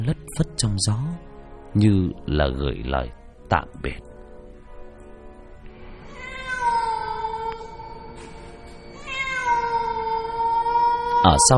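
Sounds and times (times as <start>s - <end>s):
speech: 0.0s - 4.1s, 11.2s - 11.5s
black cat meowing across a street: 6.1s - 8.1s, 8.9s - 11.5s.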